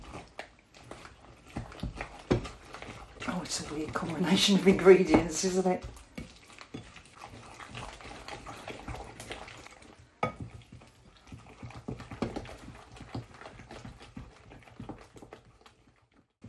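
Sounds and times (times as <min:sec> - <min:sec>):
spoon stirring a marrow pudding mixture with eggs: 0:00.0 - 0:14.7
speech: 0:03.4 - 0:06.0.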